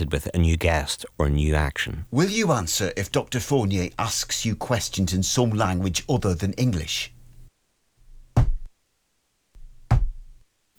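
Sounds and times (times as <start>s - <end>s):
speech: 0.0s - 7.2s
sharp knocks: 8.4s - 8.7s, 9.9s - 10.3s.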